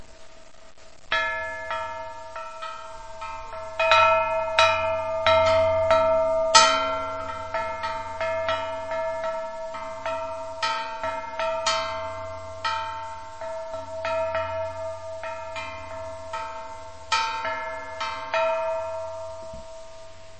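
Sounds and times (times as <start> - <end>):
sentinel lighthouse bell: 1.1 - 20.3.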